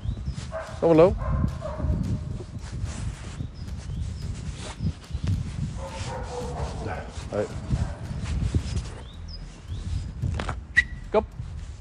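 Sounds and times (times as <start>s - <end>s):
rumbling background: 0.0s - 11.7s
dog barking: 0.5s - 2.0s, 5.8s - 8.2s
speech: 0.8s - 1.6s, 6.8s - 7.8s, 11.1s - 11.4s.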